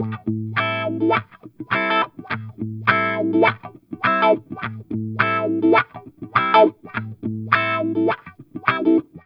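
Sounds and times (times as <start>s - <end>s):
funk guitar playing an A min7 chord: 0.0s - 9.0s.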